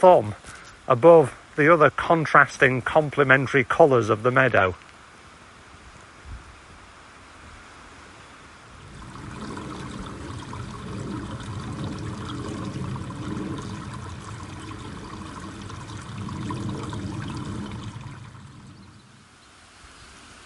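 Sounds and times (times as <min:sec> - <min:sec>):
speech: 0:00.0 - 0:04.9
heavy rain pouring down: 0:08.7 - 0:19.4.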